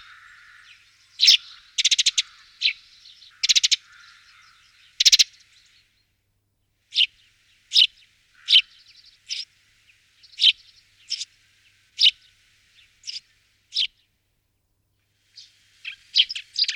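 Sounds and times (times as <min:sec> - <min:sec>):
Eurasian tree sparrow chirping: 0:00.0 - 0:05.4, 0:06.9 - 0:14.1, 0:15.4 - 0:16.7.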